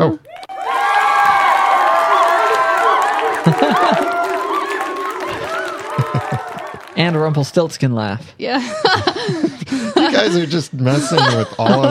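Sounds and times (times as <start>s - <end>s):
speech: 0.0s - 0.5s, 7.0s - 11.8s
crowd cheering: 0.2s - 7.9s
laughter: 2.4s - 7.0s, 8.6s - 11.8s.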